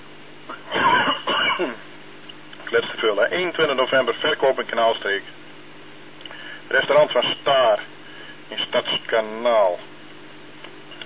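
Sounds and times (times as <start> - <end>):
person in a coughing fit: 0.5 - 1.9
speech: 2.7 - 5.4, 6.7 - 7.9, 8.5 - 9.9.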